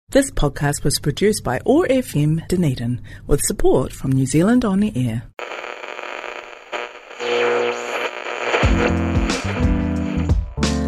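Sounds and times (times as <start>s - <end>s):
speech: 0.1s - 5.7s
hissing radio static while tuning: 5.4s - 10.7s.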